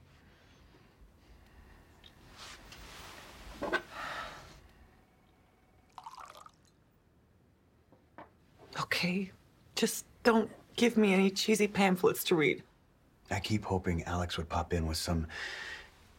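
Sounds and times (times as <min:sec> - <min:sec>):
tequila pouring into a glass: 0:05.9 - 0:06.8
speech: 0:09.0 - 0:12.7, 0:13.3 - 0:15.7.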